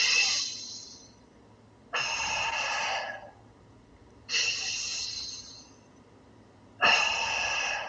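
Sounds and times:
slow deliberate breathing in through the nose and out through the mouth: 0.0s - 1.2s, 1.9s - 3.5s, 4.3s - 5.9s, 6.8s - 7.8s.

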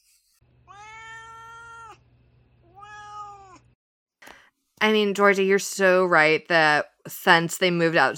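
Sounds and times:
domestic cat meowing: 0.6s - 2.0s, 2.6s - 3.8s
speech: 4.8s - 8.1s.

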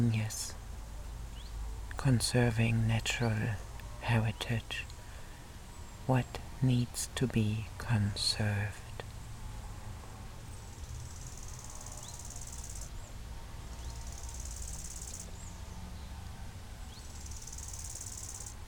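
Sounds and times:
speech: 0.0s - 0.6s, 2.0s - 4.9s, 6.1s - 8.8s
many bees buzzing: 10.5s - 12.9s, 13.9s - 15.4s.

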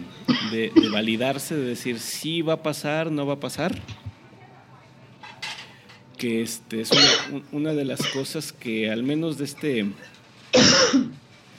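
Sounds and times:
person coughing: 0.3s - 1.0s, 6.9s - 7.4s, 8.0s - 8.3s, 10.6s - 11.2s
speech: 0.5s - 4.0s, 6.2s - 11.2s.

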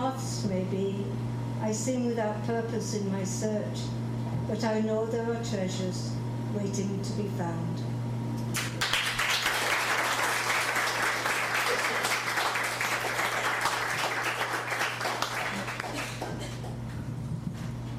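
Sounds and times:
low steady hum: 0.0s - 17.9s
speech: 0.2s - 7.9s
crowd applauding a poetry reading: 8.6s - 16.8s.

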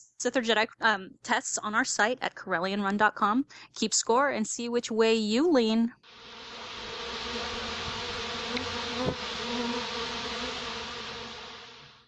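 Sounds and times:
speech: 0.2s - 6.4s
dense steady insect-like buzzing sound effect: 6.1s - 12.0s.

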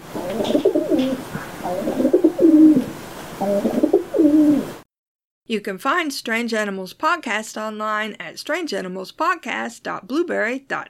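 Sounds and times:
pigeon cooing: 0.1s - 4.8s
speech: 5.5s - 10.8s.

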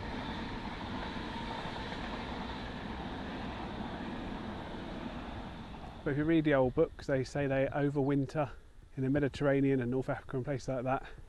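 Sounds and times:
train passing: 0.0s - 8.6s
speech: 6.0s - 11.2s.

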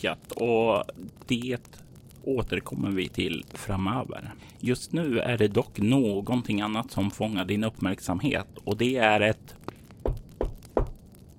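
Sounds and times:
speech: 0.0s - 10.2s
firm dull knocks on a door: 10.1s - 10.9s.

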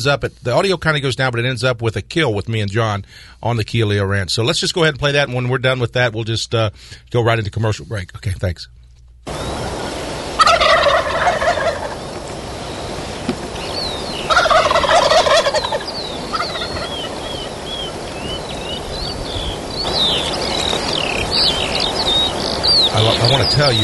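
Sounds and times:
speech: 0.0s - 9.6s, 23.2s - 23.8s
insect hum outdoors: 9.2s - 23.8s
outdoor birdsong: 9.3s - 23.8s
wild turkeys gobbling: 9.3s - 23.8s.

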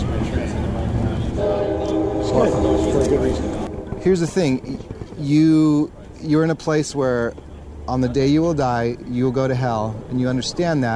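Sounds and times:
train passing: 0.0s - 10.9s
train horn blast: 1.3s - 4.6s
speech: 2.4s - 10.9s.

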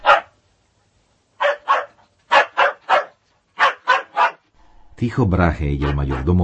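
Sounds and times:
dog barking: 0.0s - 0.4s, 1.4s - 4.5s, 5.8s - 6.4s
speech: 5.0s - 6.4s.

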